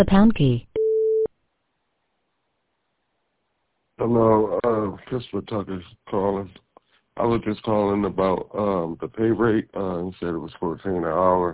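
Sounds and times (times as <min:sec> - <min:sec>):
speech: 0:00.0 - 0:00.7, 0:04.0 - 0:06.6, 0:07.2 - 0:11.5
voicemail system recording tone beep: 0:00.8 - 0:01.3.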